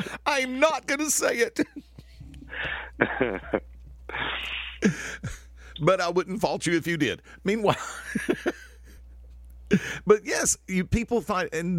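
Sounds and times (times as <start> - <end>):
speech: 0.1 - 1.9, 2.6 - 8.6, 9.7 - 11.7
harsh coughing: 2.5 - 5.5.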